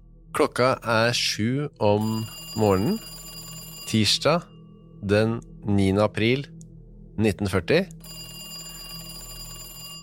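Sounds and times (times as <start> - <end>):
speech: 0.4 - 3.1, 3.9 - 6.5, 7.2 - 8.2
telephone ringing at a bank director's home in Lillehammer Norway: 2.0 - 4.6, 8.0 - 10.0.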